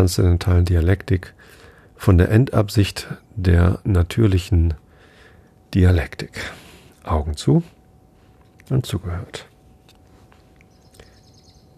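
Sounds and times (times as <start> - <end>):
speech: 0.0 - 4.8, 5.7 - 7.8, 8.7 - 9.5
hiss: 0.0 - 11.7
bird chirping as it flies past: 10.7 - 11.7.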